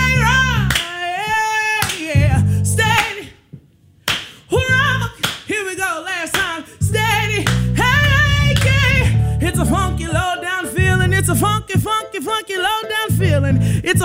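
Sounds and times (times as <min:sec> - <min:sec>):
deep bass-heavy groove: 0:00.0 - 0:00.8, 0:02.2 - 0:03.0, 0:04.6 - 0:05.2, 0:06.8 - 0:11.9, 0:13.1 - 0:14.0
person singing: 0:00.0 - 0:03.3, 0:04.5 - 0:14.0
boys clapping hands rhythmically: 0:00.6 - 0:01.0, 0:01.8 - 0:02.2, 0:02.9 - 0:03.2, 0:04.1 - 0:04.4, 0:05.2 - 0:05.6, 0:06.3 - 0:06.6, 0:07.4 - 0:09.1.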